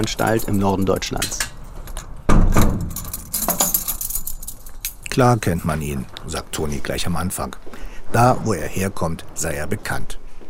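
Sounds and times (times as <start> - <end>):
speech: 0.0 - 1.5, 5.2 - 10.2
keys jangling in a prison in northern Germany: 0.0 - 5.5.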